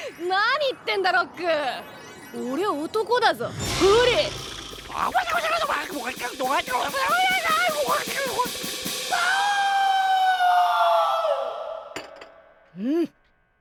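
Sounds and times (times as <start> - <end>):
speech: 0.2 - 4.4, 5.0 - 9.4, 12.8 - 13.2
woman's high-pitched scream: 9.1 - 11.9.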